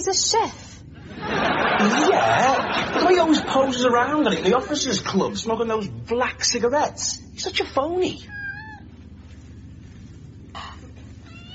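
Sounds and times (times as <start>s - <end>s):
speech: 0.0s - 8.4s
low mechanical rumble: 0.0s - 11.5s
laughter: 1.0s - 5.2s
cat meowing: 8.2s - 8.9s, 11.2s - 11.5s.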